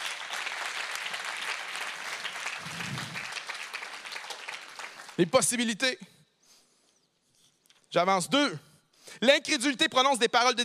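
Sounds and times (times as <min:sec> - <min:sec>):
church congregation applauding: 0:00.0 - 0:05.8
speech: 0:05.2 - 0:06.2, 0:07.9 - 0:10.6.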